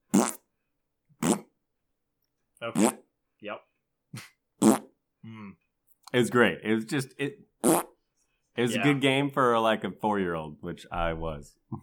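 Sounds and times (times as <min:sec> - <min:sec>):
cartoon fart sound effect: 0:00.0 - 0:00.5, 0:01.2 - 0:01.6, 0:02.7 - 0:03.1, 0:04.6 - 0:05.0, 0:07.6 - 0:08.0
speech: 0:02.6 - 0:04.3, 0:06.1 - 0:07.8, 0:08.6 - 0:11.8.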